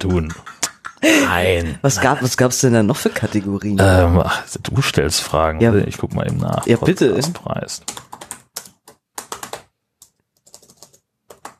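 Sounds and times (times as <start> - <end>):
speech: 0.0 - 8.2
typing on a computer keyboard: 6.3 - 11.5.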